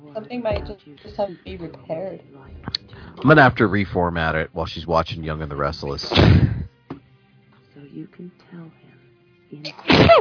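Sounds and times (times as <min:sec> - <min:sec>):
speech: 0:00.2 - 0:06.5, 0:08.0 - 0:08.8, 0:09.5 - 0:10.1
sneeze with a short voiced intake: 0:06.1 - 0:06.7, 0:09.7 - 0:10.1.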